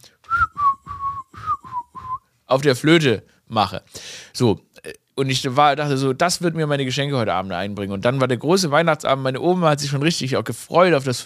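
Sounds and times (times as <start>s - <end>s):
person whistling a simple children's song melody: 0.3s - 2.3s
speech: 2.5s - 11.2s.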